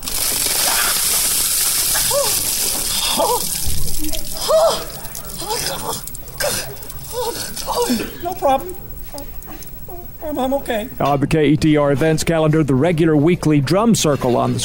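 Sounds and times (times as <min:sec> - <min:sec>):
ice water dumped over someone for the ice water challenge: 0:00.0 - 0:06.6
water sloshing and dripping: 0:00.0 - 0:07.6
speech: 0:07.2 - 0:09.4, 0:10.2 - 0:14.6.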